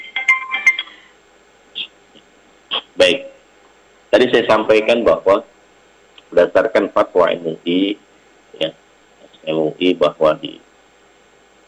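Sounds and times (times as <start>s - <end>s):
mobile phone ringtone for an incoming call: 0.0s - 1.1s
speech: 4.1s - 5.5s, 6.3s - 8.8s, 9.4s - 10.6s.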